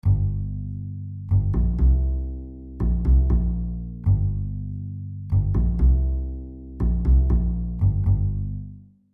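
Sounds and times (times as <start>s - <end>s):
bass guitar lick: 0.0s - 8.9s.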